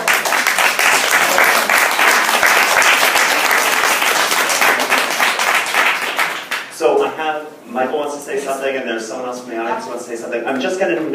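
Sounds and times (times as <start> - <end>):
crowd applauding: 0.0 - 6.7
speech: 7.8 - 11.1.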